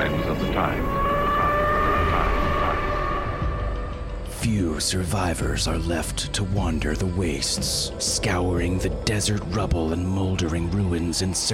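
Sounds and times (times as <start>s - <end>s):
civil defense warning siren wailing: 0.0s - 4.2s
rushing rumbling noise: 0.0s - 11.2s
speech: 0.6s - 1.0s, 4.8s - 11.5s.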